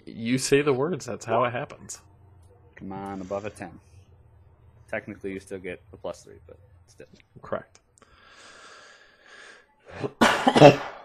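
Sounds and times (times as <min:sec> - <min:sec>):
speech: 0:00.2 - 0:02.1, 0:02.8 - 0:03.9, 0:04.9 - 0:07.8, 0:09.9 - 0:11.0
person inhaling: 0:08.0 - 0:09.7
person getting over a cough coughing harshly: 0:10.0 - 0:11.0.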